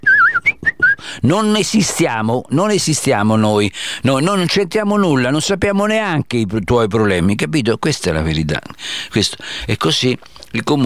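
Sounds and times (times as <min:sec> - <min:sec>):
person whistling a tune: 0:00.0 - 0:01.2
speech: 0:01.2 - 0:10.8.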